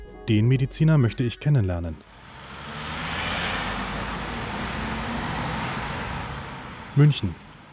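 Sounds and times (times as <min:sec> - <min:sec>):
speech: 0:00.3 - 0:02.2, 0:07.0 - 0:07.4
city street traffic with low engine rumble: 0:02.0 - 0:07.7.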